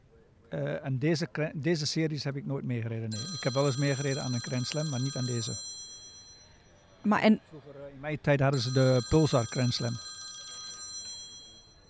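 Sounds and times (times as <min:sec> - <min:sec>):
speech: 0:00.5 - 0:05.7, 0:07.0 - 0:10.1
telephone ringing with trilling electronic tone: 0:03.1 - 0:11.8.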